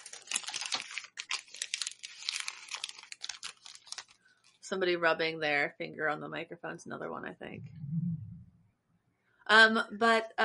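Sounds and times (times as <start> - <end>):
crisp paper rustling as pages are turned: 0.0 - 4.6
speech: 4.7 - 7.9, 9.5 - 10.4.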